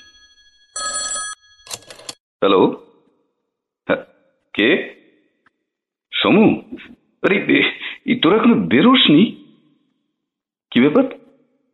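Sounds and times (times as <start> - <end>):
telephone ringing with bright high electronic trilling: 0.0 - 2.2
speech: 2.4 - 2.8, 3.9 - 5.0, 6.2 - 9.4, 10.8 - 11.2.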